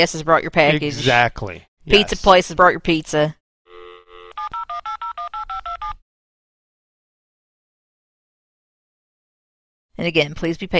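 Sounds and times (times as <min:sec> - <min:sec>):
speech: 0:00.0 - 0:03.4, 0:10.0 - 0:10.7
telephone dial tone: 0:03.7 - 0:06.0
telephone keypad dialing beeps at changing pitches: 0:04.3 - 0:06.0.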